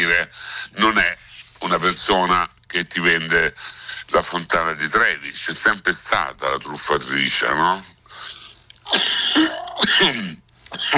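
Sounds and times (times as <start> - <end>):
speech: 1.8 - 8.0, 8.9 - 10.9
person sneezing: 8.8 - 10.9.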